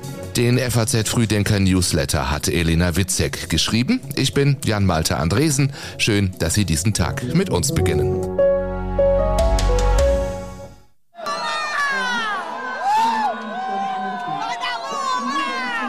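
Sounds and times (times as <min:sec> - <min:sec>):
speech: 0:00.4 - 0:08.4
steady musical tone: 0:06.8 - 0:10.8
large street crowd cheering and shouting: 0:11.2 - 0:15.8.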